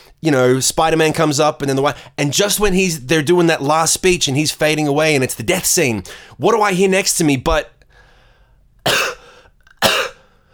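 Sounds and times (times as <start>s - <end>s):
speech: 0.2s - 7.8s
person imitating a woman coughing loudly in a quiet cinema: 8.9s - 10.3s.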